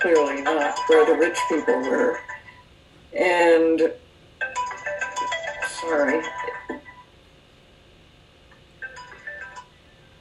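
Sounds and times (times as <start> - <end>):
speech: 0.0 - 2.4, 3.1 - 4.0, 5.8 - 6.6
phone ringing with a melodic electronic ringtone: 0.0 - 2.6, 4.4 - 7.1, 8.8 - 9.8.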